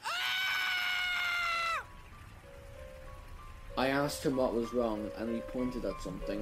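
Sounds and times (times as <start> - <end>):
man screaming: 0.0 - 1.8
speech: 4.0 - 6.4.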